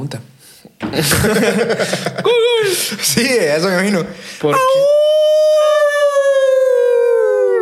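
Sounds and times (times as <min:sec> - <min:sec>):
laughter: 0:00.8 - 0:05.0
speech: 0:00.9 - 0:05.9
neighbor's dog howling: 0:04.6 - 0:07.6.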